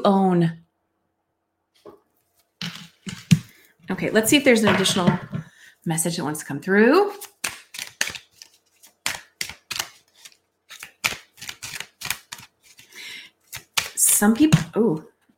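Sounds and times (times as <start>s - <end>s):
speech: 0.0s - 0.6s, 3.9s - 7.3s, 14.2s - 15.1s
deck of cards being shuffled and handled: 2.6s - 3.5s, 7.1s - 14.5s.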